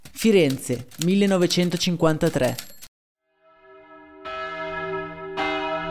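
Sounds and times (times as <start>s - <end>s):
speech: 0.2s - 2.7s
church bell tolling for a death: 3.4s - 5.9s.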